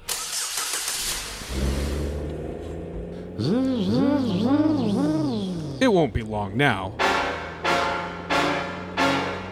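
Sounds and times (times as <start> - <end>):
car engine starting with rough crank and steady hum: 0.0 - 9.5
loud rising and falling whine: 1.7 - 9.5
speech: 3.4 - 4.7, 5.8 - 7.1.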